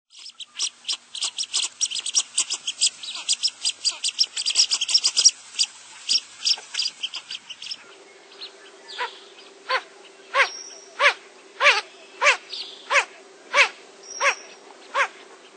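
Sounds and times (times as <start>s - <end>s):
steady background hum: 0.1s - 15.5s
Blue-winged teal calling with hoarse nasal quacks: 0.2s - 7.8s, 10.4s - 15.2s.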